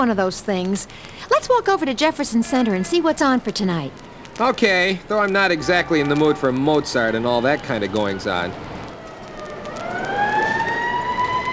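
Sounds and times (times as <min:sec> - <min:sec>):
speech: 0:00.0 - 0:08.7
faint traffic rumble: 0:00.0 - 0:11.5
police car sirens wailing: 0:04.2 - 0:11.5.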